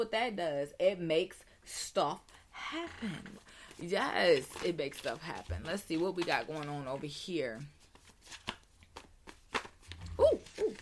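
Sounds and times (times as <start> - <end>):
speech: 0.0 - 8.6
deck of cards being shuffled: 3.3 - 10.7.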